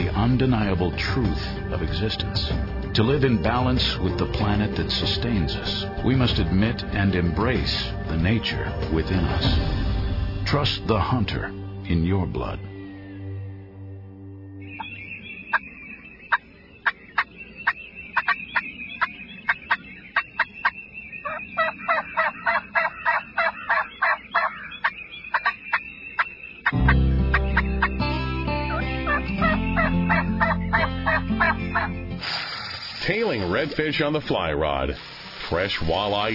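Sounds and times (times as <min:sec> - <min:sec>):
low dense musical bed: 0:00.0 - 0:15.4, 0:26.8 - 0:32.4
speech: 0:00.2 - 0:09.8, 0:10.5 - 0:12.7, 0:33.8 - 0:36.3
wild turkey gobbling: 0:14.8 - 0:28.1, 0:28.7 - 0:32.0.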